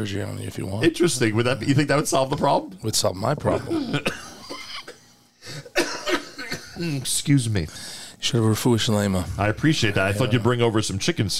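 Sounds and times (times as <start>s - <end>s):
speech: 0.0s - 4.3s, 6.8s - 11.3s
person with a terrible cough coughing: 3.5s - 6.9s.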